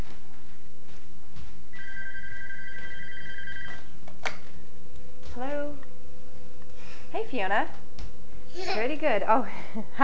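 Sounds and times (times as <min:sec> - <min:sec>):
low hum: 0:00.0 - 0:10.0
telephone ringing with an electronic trill: 0:01.8 - 0:03.9
speech: 0:07.3 - 0:07.8, 0:08.6 - 0:10.0.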